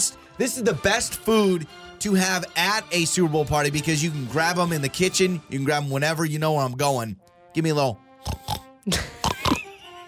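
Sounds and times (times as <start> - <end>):
speech: 0.0 - 8.0, 8.8 - 9.2
voice imitating a pig's oink with nasal grunts: 8.2 - 9.7.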